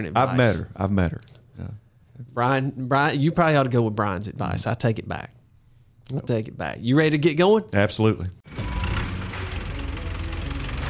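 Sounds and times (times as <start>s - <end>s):
speech: 0.0s - 5.4s, 6.1s - 8.7s
tractor engine running with a rough knocking rumble: 8.5s - 10.8s.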